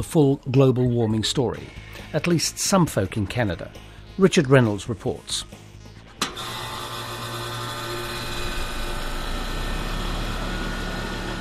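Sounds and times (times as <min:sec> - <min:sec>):
speech: 0:00.0 - 0:05.6
air conditioner starting up in a Canadian summer: 0:06.1 - 0:11.3.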